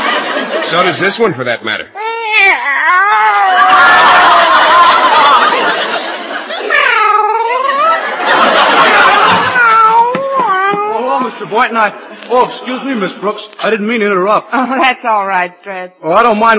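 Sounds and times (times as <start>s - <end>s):
laughter: 0.0s - 1.4s, 3.4s - 13.3s
speech: 0.7s - 4.9s, 11.3s - 16.5s
cat meowing: 2.0s - 3.8s, 6.7s - 8.0s, 9.4s - 11.0s
cat yowling: 2.1s - 4.6s, 6.7s - 8.1s, 9.2s - 11.0s.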